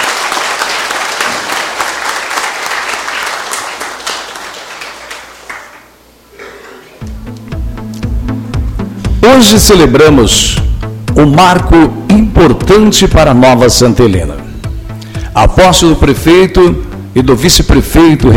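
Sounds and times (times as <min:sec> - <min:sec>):
warm round of applause from a crowd: 0:00.0 - 0:06.0
music with a strong low beat: 0:07.0 - 0:18.3
speech: 0:09.4 - 0:14.4, 0:15.4 - 0:18.3.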